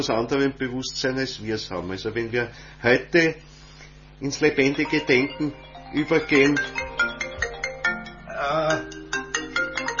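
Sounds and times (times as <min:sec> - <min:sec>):
speech: 0:00.0 - 0:03.5, 0:04.2 - 0:06.9
telephone ringing with a repeating electronic tone pattern: 0:04.7 - 0:08.3.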